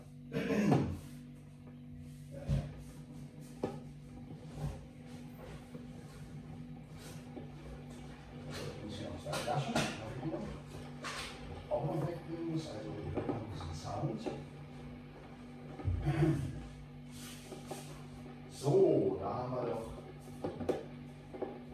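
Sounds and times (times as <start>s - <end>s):
coffee machine humming: 0.0s - 21.7s.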